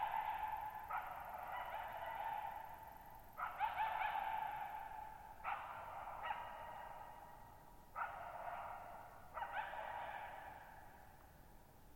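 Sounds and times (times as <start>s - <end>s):
lone wild coyote barking at night in a mountain meadow: 0.0s - 2.7s, 3.4s - 7.1s, 8.0s - 10.8s.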